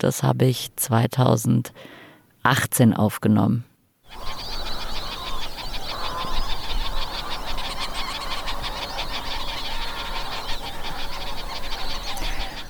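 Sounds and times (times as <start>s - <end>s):
speech: 0.0s - 4.4s
geese and other waterfowl honking and calling at open water: 4.1s - 12.6s.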